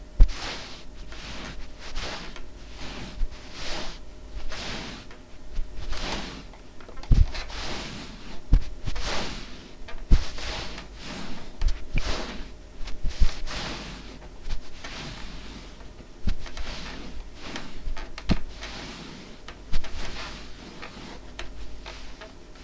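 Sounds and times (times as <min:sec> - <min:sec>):
scuffs: 0:00.0 - 0:06.5, 0:07.1 - 0:09.5, 0:10.1 - 0:22.6.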